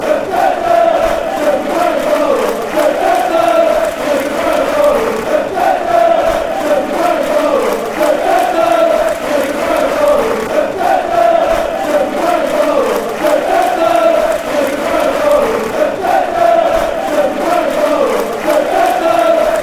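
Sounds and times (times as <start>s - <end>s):
fans chanting: 0.0s - 19.6s.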